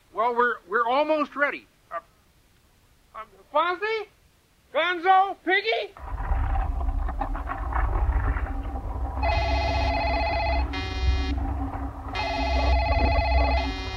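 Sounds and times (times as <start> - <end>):
speech: 0.2 - 2.1, 3.2 - 4.2, 4.8 - 6.2
low rumbling background: 6.0 - 13.9
telephone ringing in bright trilling bursts: 9.2 - 13.9.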